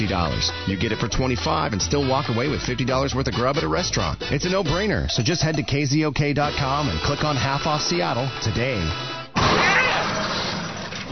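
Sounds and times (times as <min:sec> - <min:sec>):
speech: 0:00.0 - 0:09.6
something crashing through a roof: 0:09.4 - 0:11.1.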